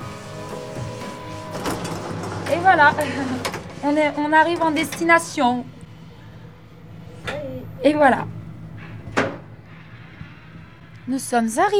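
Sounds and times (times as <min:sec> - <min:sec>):
elevator travelling upward with mechanical whir and hum: 0:00.0 - 0:11.7
speech: 0:02.5 - 0:05.8, 0:07.8 - 0:08.3, 0:11.1 - 0:11.7.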